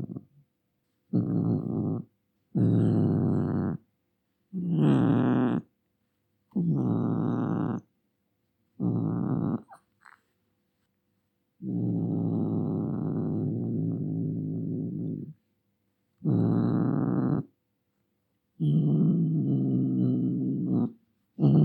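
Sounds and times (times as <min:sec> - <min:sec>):
angry cat giving long low growls: 0:00.0 - 0:00.3, 0:01.1 - 0:03.8, 0:04.5 - 0:05.7, 0:06.6 - 0:07.8, 0:08.8 - 0:10.2, 0:11.6 - 0:15.4, 0:16.2 - 0:17.5, 0:18.6 - 0:21.6.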